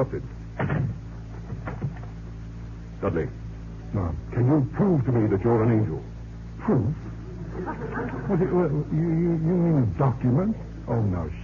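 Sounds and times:
speech: 0:00.0 - 0:00.4, 0:03.0 - 0:11.4
door being pushed shut: 0:00.6 - 0:02.1
laughter: 0:06.7 - 0:09.1.

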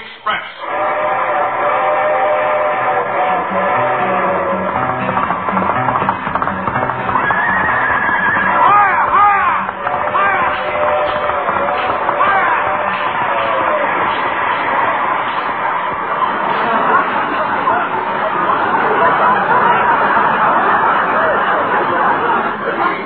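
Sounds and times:
rhythmic clatter of a passing train: 0:00.0 - 0:23.0
train rumbling past: 0:00.6 - 0:23.0
sharp horse whinnies: 0:07.1 - 0:09.6
laughter: 0:07.1 - 0:23.0.

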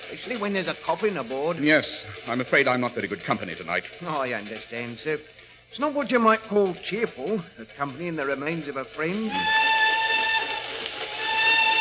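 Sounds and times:
speech: 0:00.1 - 0:09.7
old train whistle blast at night: 0:09.1 - 0:11.7.

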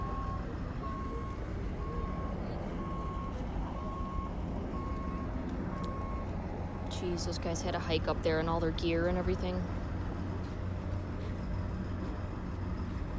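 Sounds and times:
ambulance reversing alarm beeping at Griffith Park Observatory: 0:00.0 - 0:06.3
constant rumble of engines: 0:00.0 - 0:13.1
outdoor noise: 0:00.0 - 0:13.1
speech: 0:07.0 - 0:09.8.

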